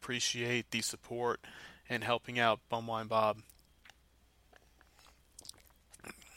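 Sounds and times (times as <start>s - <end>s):
speech: 0.0s - 3.5s
wet mouth clicks while sipping a malt drink: 5.3s - 6.3s.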